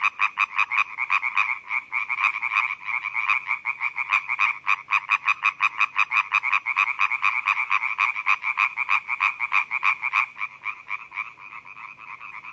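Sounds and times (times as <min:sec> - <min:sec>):
European tree frog croaking with sharp rasping knocks: 0:00.0 - 0:12.5.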